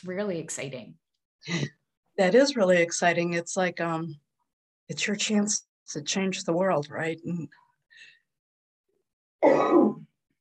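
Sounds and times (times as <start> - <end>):
speech: 0.0 - 4.2, 4.9 - 8.1, 9.4 - 10.0
cough: 9.4 - 10.2.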